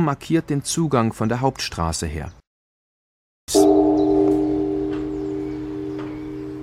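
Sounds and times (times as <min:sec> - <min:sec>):
speech: 0:00.0 - 0:02.4
large Buddhist temple bell struck hard: 0:03.5 - 0:06.6.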